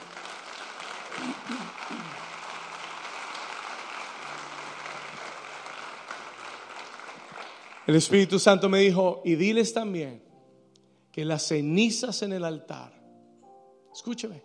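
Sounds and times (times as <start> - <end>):
audience applauding: 0.0 - 8.7
speech: 7.9 - 10.3, 11.2 - 13.0, 14.0 - 14.4.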